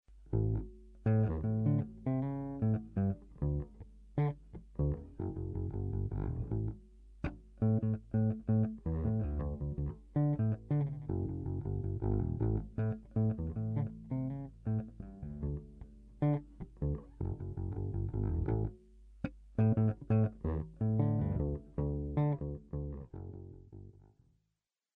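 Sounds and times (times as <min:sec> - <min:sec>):
1969 EB3 bass guitar: 0:00.1 - 0:24.3.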